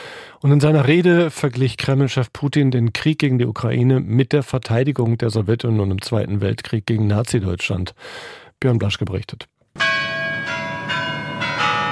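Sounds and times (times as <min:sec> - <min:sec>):
speech: 0:00.4 - 0:09.9
Kremlin church bells ringing in Moscow: 0:09.8 - 0:11.9.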